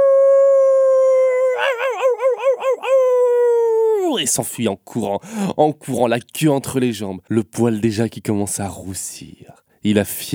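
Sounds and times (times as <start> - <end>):
wolf scalded with boiling soup howling in pain at night: 0.0 - 4.2
speech: 4.2 - 10.3.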